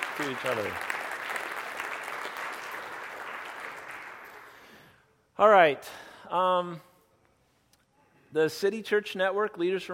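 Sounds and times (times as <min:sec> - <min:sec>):
group of people clapping hands: 0:00.0 - 0:04.8
speech: 0:00.2 - 0:01.0, 0:05.4 - 0:06.9, 0:08.3 - 0:09.9.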